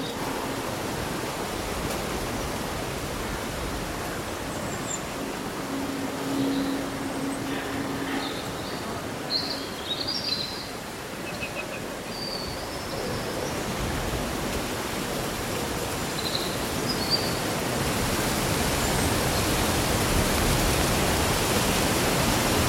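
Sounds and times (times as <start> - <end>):
leaves rustling: 0.0 - 22.6
birdsong chirps: 4.0 - 13.7.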